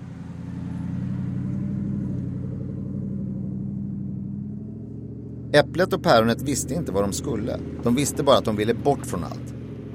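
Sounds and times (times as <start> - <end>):
small car engine humming: 0.0 - 9.9
speech: 5.5 - 9.6.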